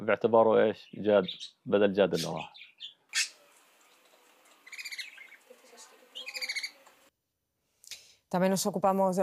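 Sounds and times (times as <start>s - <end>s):
speech: 0.0s - 2.9s, 8.3s - 9.2s
pet bird singing: 0.8s - 3.4s, 4.6s - 6.9s.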